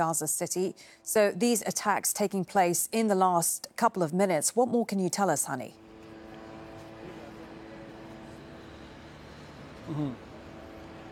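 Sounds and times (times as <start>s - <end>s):
speech: 0.0s - 5.8s, 9.9s - 10.2s
many drones humming in the sky above Gaza City: 5.8s - 11.1s.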